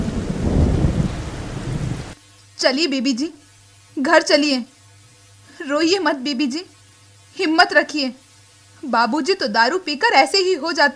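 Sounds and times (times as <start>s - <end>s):
heavy rain: 0.0s - 2.2s
rolling thunder: 0.0s - 2.2s
speech: 2.6s - 3.4s, 4.0s - 4.7s, 5.6s - 6.8s, 7.4s - 8.2s, 8.8s - 10.9s.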